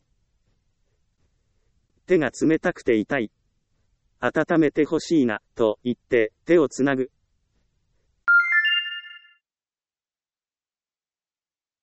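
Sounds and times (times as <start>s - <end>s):
speech: 2.1s - 3.4s, 4.2s - 7.2s
mobile phone incoming email notification tone: 8.3s - 9.4s.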